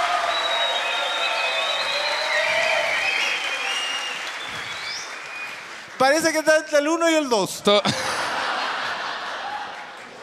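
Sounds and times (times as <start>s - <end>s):
whistles and cheers: 0.0s - 5.8s
audience applause: 0.0s - 6.5s, 7.9s - 10.2s
speech: 6.0s - 8.0s
laughter: 7.7s - 10.2s.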